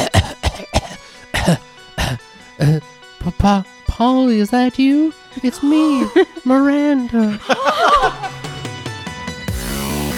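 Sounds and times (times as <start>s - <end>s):
character coughing in an audio adventure drama: 0.0s - 2.9s
speech: 3.4s - 8.2s
laughter: 5.7s - 6.6s, 7.2s - 8.6s.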